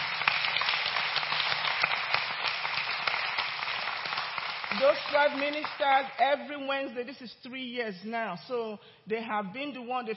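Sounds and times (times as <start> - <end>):
audience applauding: 0.0 - 6.0
speech: 4.8 - 10.1.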